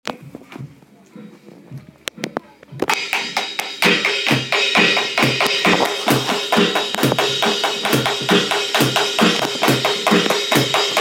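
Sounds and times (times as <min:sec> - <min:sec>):
live drum beat: 0:02.2 - 0:10.9.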